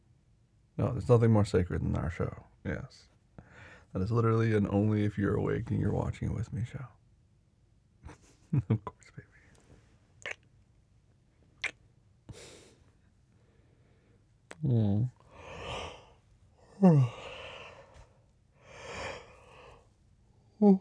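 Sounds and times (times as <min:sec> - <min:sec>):
speech: 0:00.8 - 0:03.1, 0:03.9 - 0:07.0, 0:08.5 - 0:09.3, 0:14.6 - 0:15.2, 0:16.8 - 0:17.2, 0:20.6 - 0:20.7
person yawning with a voiced falling moan: 0:14.6 - 0:17.9
breathy exhales and soft sighing breaths: 0:15.2 - 0:19.9.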